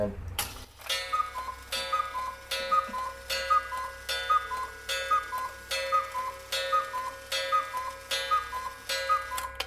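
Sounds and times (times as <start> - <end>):
Black Forest cuckoo clock ticking: 0.8 - 9.6
cuckoo clock chime-like ringing tone: 0.9 - 9.6.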